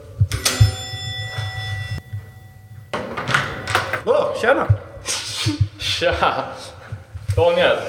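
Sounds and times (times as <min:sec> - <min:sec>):
apartment doorbell chime: 0:00.3 - 0:03.6
speech: 0:04.0 - 0:06.8, 0:07.4 - 0:07.8.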